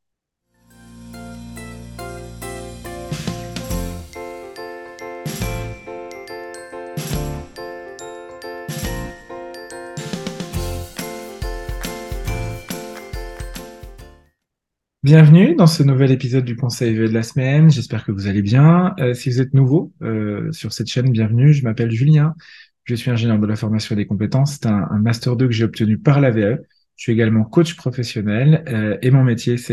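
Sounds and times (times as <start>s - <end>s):
low sustained bass: 0.7s - 4.2s
tinkling bell-like tones in a podcast intro jingle: 1.2s - 14.2s
crisp percussive hits: 3.1s - 4.5s, 5.2s - 5.9s, 6.9s - 7.7s, 8.7s - 9.3s, 10.0s - 14.2s
speech: 15.0s - 29.7s.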